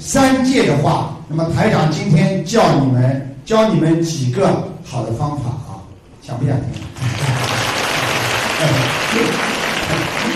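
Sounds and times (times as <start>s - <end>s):
speech: 0.0s - 7.5s, 8.6s - 10.3s
audience crowd applauding: 6.8s - 10.3s.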